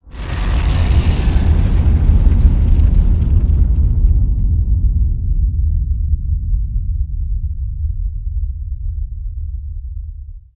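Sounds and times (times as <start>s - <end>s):
rumble in caves: 0.0s - 10.5s.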